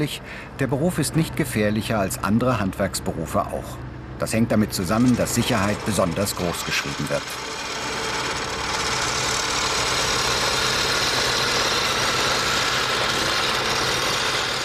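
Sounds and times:
speech: 0:00.0 - 0:07.7
rock drill boring upward into mine roof: 0:04.4 - 0:14.6.

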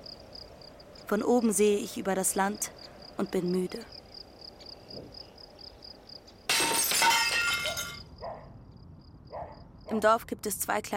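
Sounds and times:
speech: 0:01.1 - 0:04.0, 0:05.0 - 0:05.2, 0:09.9 - 0:10.9
faint tinkling glass fragments: 0:06.5 - 0:08.1
shop window glass shattering from a thrown stone: 0:06.5 - 0:08.1.

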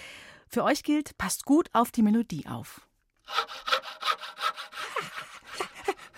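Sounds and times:
speech: 0:00.5 - 0:03.5
handsaw sawing through wood: 0:03.2 - 0:06.1.

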